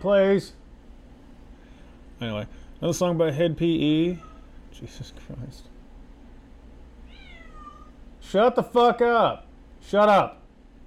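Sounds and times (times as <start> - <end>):
speech: 0.0 - 0.6, 2.2 - 5.7, 8.2 - 10.4
steady low hum: 0.0 - 10.8
cat meowing: 4.0 - 4.6, 7.0 - 8.0.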